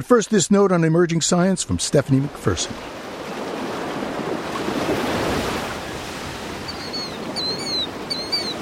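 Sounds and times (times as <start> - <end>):
speech: 0.0 - 3.0
ocean waves crashing: 1.1 - 8.6
thin high cries: 6.6 - 8.6.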